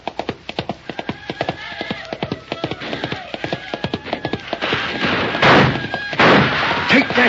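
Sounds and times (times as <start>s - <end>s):
horse galloping: 0.0s - 6.2s
horse whinny: 1.0s - 6.2s.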